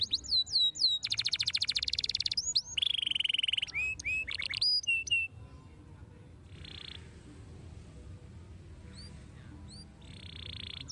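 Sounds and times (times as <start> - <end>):
Belgian canary song: 0.0 - 5.7, 6.4 - 7.2, 8.7 - 10.8.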